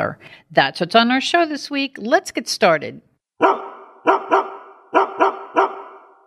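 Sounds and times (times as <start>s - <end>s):
speech: 0.0s - 3.6s
dog barking: 3.4s - 6.2s.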